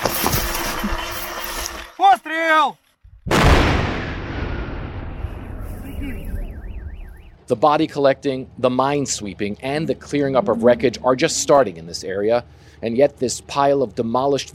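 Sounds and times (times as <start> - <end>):
steady outdoor noise: 0.0 - 14.5
speech: 0.8 - 1.0, 2.2 - 2.8, 7.5 - 14.5
controlled explosion of unexploded bombs booming: 3.2 - 6.9
rising whistle-like tones: 6.2 - 7.4, 9.9 - 12.1.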